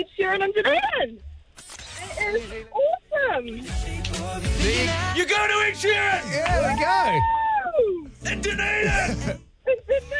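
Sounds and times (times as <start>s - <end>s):
speech: 0.0s - 10.1s
person yelling excitedly: 5.3s - 9.2s.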